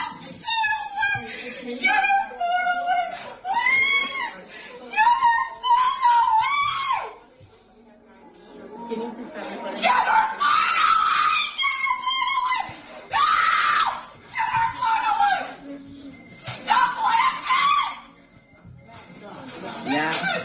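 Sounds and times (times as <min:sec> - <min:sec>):
laughter: 0:00.0 - 0:05.7, 0:08.5 - 0:18.1, 0:19.0 - 0:20.4
faint voices: 0:00.0 - 0:20.4
woman screaming during a meltdown: 0:09.8 - 0:15.5, 0:16.7 - 0:18.0.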